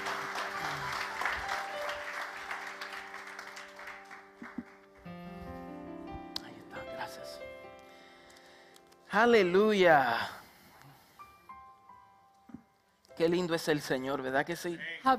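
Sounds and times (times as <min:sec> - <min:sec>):
audience applause: 0:00.0 - 0:05.1
speech: 0:09.1 - 0:10.4, 0:13.2 - 0:15.1.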